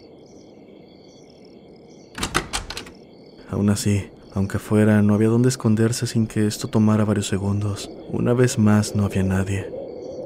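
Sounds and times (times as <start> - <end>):
sharp knocks on a door: 2.2 - 2.9
speech: 3.5 - 9.8.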